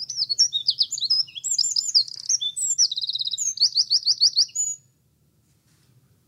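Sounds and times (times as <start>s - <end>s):
Eurasian wren singing high trills and chattering notes: 0.0s - 4.8s.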